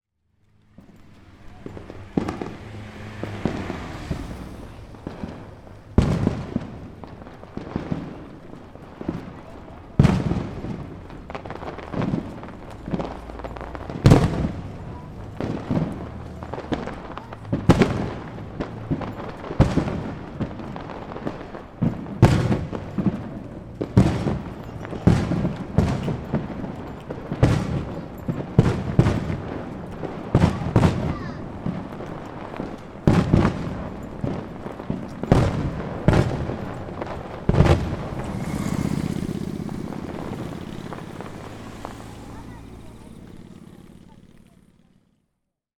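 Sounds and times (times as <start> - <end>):
distant fireworks: 0.4 - 45.2.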